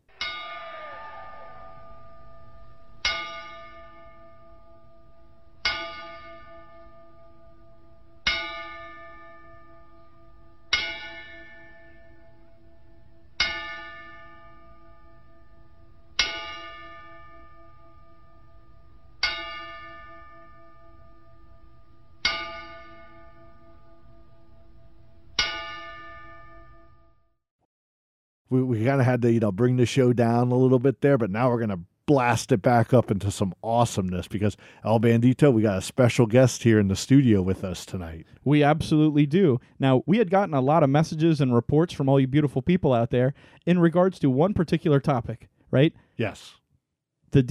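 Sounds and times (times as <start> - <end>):
single bell struck as a bell salute: 0.0 - 27.1
speech: 28.5 - 46.6.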